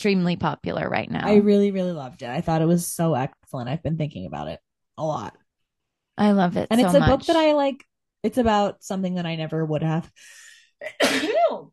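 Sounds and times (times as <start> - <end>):
speech: 0.0 - 5.4, 6.2 - 11.7
sneeze: 11.0 - 11.6.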